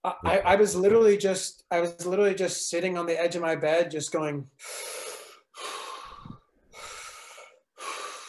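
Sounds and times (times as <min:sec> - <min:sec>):
speech: 0:00.0 - 0:05.0
person breathing deeply and forcefully into the microphone: 0:04.6 - 0:08.2.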